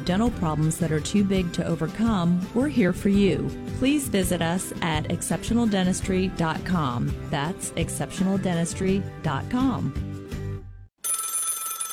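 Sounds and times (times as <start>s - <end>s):
speech: 0.0s - 10.1s
old-fashioned telephone bell ringing: 11.0s - 11.9s.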